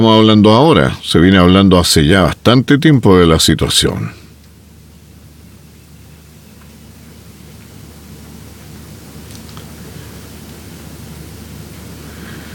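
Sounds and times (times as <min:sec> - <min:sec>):
speech: 0:00.0 - 0:04.2
steady rain falling: 0:04.4 - 0:12.5.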